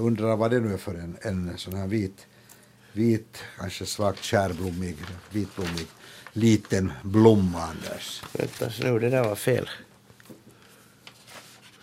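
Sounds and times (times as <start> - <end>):
speech: 0.0 - 9.9
paper sheets rustling and shuffling as they are swapped: 3.9 - 9.8, 11.0 - 11.8.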